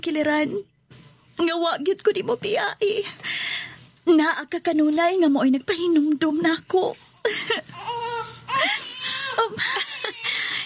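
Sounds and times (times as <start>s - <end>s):
speech: 0.0s - 0.7s, 1.4s - 3.3s, 4.1s - 7.6s
newborn baby crying in short high wavering bursts: 7.2s - 10.6s.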